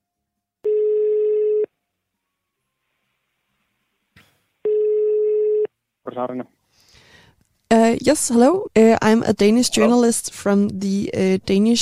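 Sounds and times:
outgoing telephone call ringing tone beeps: 0.7 - 1.7, 4.7 - 5.7
speech: 6.2 - 6.6, 7.8 - 11.8.

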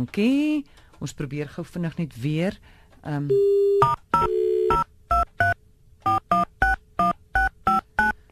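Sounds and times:
speech: 0.0 - 4.8
telephone dial tone hum: 3.3 - 6.5
touch-tone telephone keypad beeps: 3.8 - 8.2.

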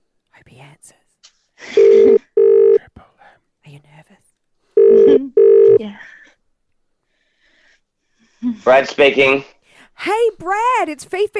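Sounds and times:
speech: 0.5 - 1.0, 8.7 - 11.3
telephone tones as a number is dialed: 1.8 - 2.8, 4.8 - 5.8.

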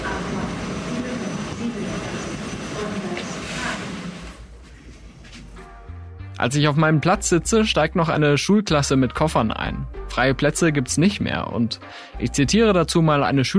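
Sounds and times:
train section pulling into a station with rumbling roar and hiss: 0.0 - 5.8
speech: 6.4 - 13.5.

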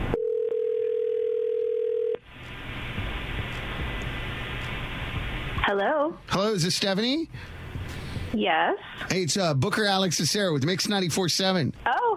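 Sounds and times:
steady ringback tone over a phone line: 0.2 - 2.2
hissy phone line noise: 2.2 - 11.6
speech: 5.7 - 7.6, 8.3 - 12.1.

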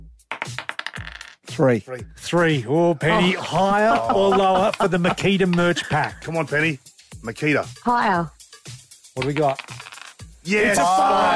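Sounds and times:
dice clattering across a hard surface: 0.3 - 1.4, 9.2 - 10.3
speech: 1.6 - 8.4, 9.2 - 9.8, 10.4 - 11.3
laughter: 3.0 - 6.6, 10.6 - 11.3.

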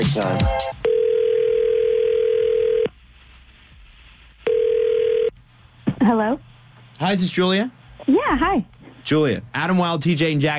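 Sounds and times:
speech: 0.0 - 0.9, 6.1 - 10.5
outgoing phone call ringback tone: 0.8 - 2.9, 4.5 - 5.3.

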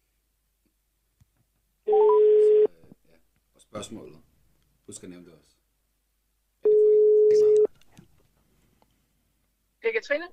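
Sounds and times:
faint noise: 0.0 - 10.3
telephone ringing tone heard through the handset: 1.9 - 2.7
speech: 3.7 - 4.3, 4.9 - 5.6, 9.8 - 10.3.

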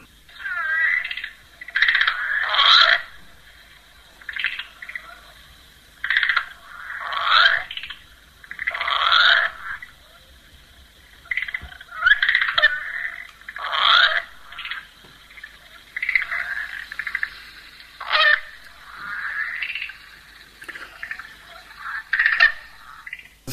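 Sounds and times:
common river frog Amiitia angulensis calling with clicks and growling rattle: 0.0 - 23.5
faint hum: 0.0 - 23.5.

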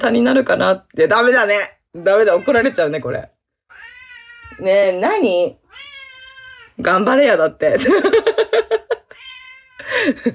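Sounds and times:
speech: 0.0 - 3.3, 4.6 - 5.6, 6.8 - 8.7, 9.8 - 10.3
cat meowing: 2.2 - 2.9, 3.7 - 4.7, 5.6 - 6.8, 9.1 - 9.8.

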